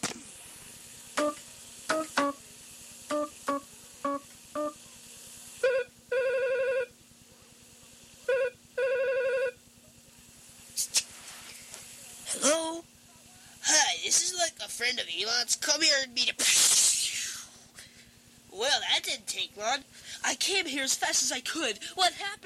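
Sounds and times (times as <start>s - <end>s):
faint steady hum: 0.0s - 22.4s
phone line ringing in long buzzing bursts: 5.7s - 6.9s, 8.3s - 9.6s
speech: 14.9s - 16.7s, 19.4s - 22.4s.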